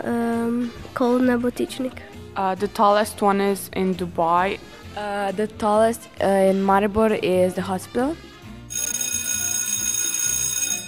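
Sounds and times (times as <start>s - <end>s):
speech: 0.0s - 8.3s
electric school bell ringing at a primary school in Maribor: 8.7s - 10.8s.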